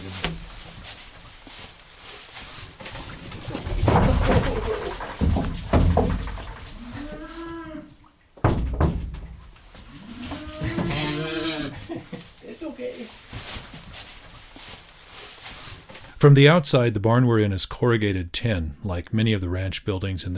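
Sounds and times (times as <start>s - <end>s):
shuffling and rustling: 0.0s - 7.6s, 9.0s - 16.2s
calf mooing in a ranch barn of corrugated tin over peeled pine logs: 6.8s - 8.0s, 9.9s - 11.8s
speech: 16.2s - 20.3s.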